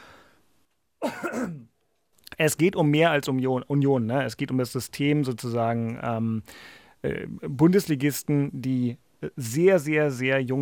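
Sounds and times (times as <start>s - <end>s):
soft room noise: 0.0s - 10.5s
loud raspy throat clearing: 1.0s - 1.7s
speech: 2.4s - 10.5s.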